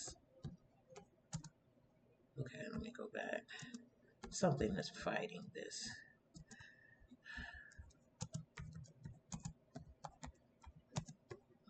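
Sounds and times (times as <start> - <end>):
rapid typing on a computer keyboard: 0.0 - 1.6, 3.5 - 4.4, 6.3 - 11.6
speech: 2.4 - 6.1.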